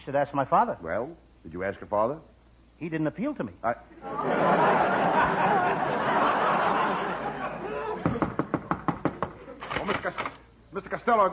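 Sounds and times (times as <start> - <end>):
speech: 0.0 - 5.9, 10.0 - 11.3
crowd laughing and murmuring loudly: 4.0 - 8.6
sharp loud knocks pounding on a door: 8.0 - 9.4.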